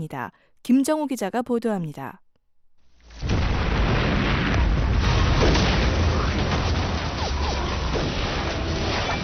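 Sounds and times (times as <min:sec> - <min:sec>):
speech: 0:00.0 - 0:02.2
explosions in a Chinese television war drama: 0:03.0 - 0:09.2
gunfire in a Chinese television war drama: 0:03.2 - 0:09.2.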